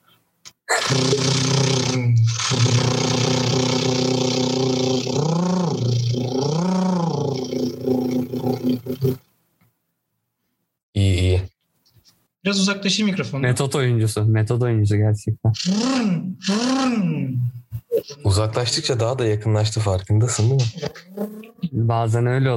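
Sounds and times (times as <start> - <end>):
voice imitating a car engine being cold-started with the ignition key: 0.7 - 9.2, 15.5 - 17.5
speech: 12.5 - 17.5, 18.3 - 22.5.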